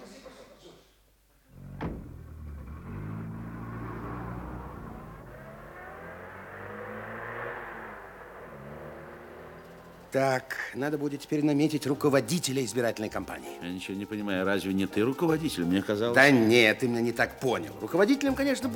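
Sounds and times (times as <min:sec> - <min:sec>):
car engine starting, revving and driving off: 0:01.5 - 0:10.7
rented car door thumping shut: 0:01.7 - 0:03.2
speech: 0:10.1 - 0:18.7.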